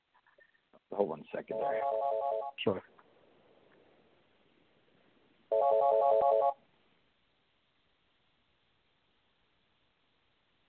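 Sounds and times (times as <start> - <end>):
speech: 0.9 - 2.9
mobile phone ringtone with bright electronic melody: 1.5 - 2.6, 5.5 - 6.6.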